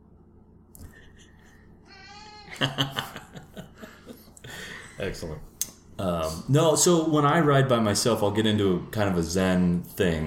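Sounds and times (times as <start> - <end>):
cat meowing: 1.9 - 2.6
people laughing: 2.5 - 4.8
speech: 2.6 - 3.1, 5.0 - 10.2.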